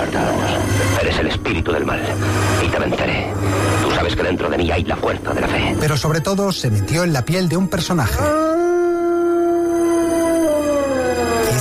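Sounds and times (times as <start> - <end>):
speech: 1.1 - 8.5
werewolf howl: 8.1 - 11.5.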